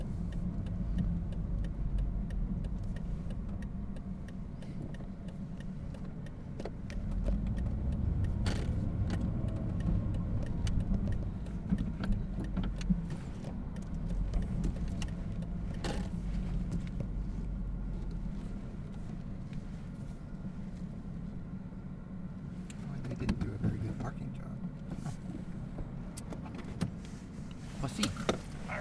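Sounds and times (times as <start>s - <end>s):
faint ticks and rattles inside a car: 0.0s - 20.8s
low car engine rumble heard from inside a car pulling in to park: 0.0s - 28.7s
road drone from inside a car: 0.0s - 28.7s.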